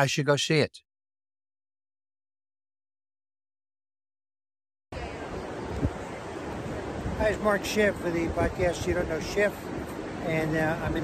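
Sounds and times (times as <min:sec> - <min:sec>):
speech: 0:00.0 - 0:00.9, 0:07.2 - 0:11.0
steady dense roar of rushing water: 0:04.9 - 0:11.0.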